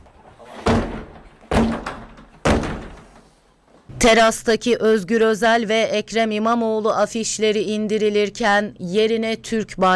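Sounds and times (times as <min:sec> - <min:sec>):
locked terrace door forced open with shoulder blows and kicks: 0:00.0 - 0:03.8
speech: 0:04.0 - 0:09.9.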